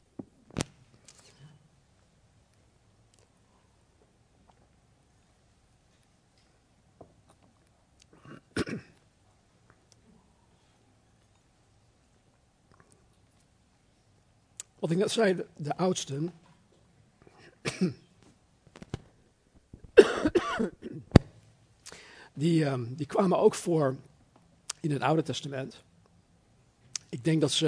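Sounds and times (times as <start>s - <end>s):
person clearing throat: 8.1s - 9.0s, 17.6s - 18.1s, 20.0s - 21.1s
person coughing: 8.2s - 9.0s, 17.4s - 18.1s, 20.0s - 21.1s
speech: 14.8s - 16.4s, 17.8s - 18.0s, 22.4s - 24.1s, 24.8s - 25.9s, 27.1s - 27.6s.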